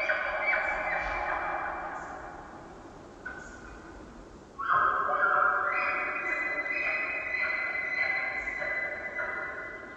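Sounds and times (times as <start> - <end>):
elk bull calling echoing through a valley: 0.0 - 2.2, 4.6 - 9.9.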